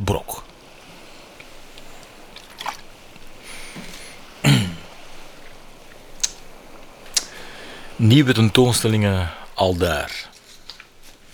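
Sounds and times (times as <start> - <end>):
person sipping water: 1.4 - 6.5
person swallowing or clearing throat: 3.5 - 5.0
small sharp clicks: 6.2 - 6.5, 7.1 - 7.4
speech: 8.0 - 10.3.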